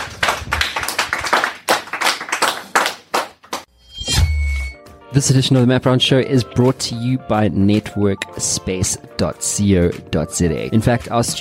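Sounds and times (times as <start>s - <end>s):
applause from a small group: 0.0s - 3.7s
speech: 5.2s - 11.4s.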